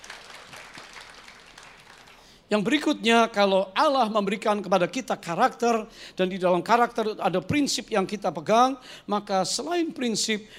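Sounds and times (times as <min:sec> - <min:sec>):
crowd applauding: 0:00.0 - 0:02.3
speech: 0:02.5 - 0:10.5.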